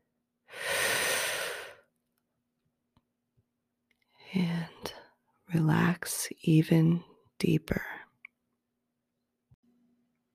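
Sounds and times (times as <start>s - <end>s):
deep breath: 0.5s - 1.9s
speech: 5.5s - 8.0s.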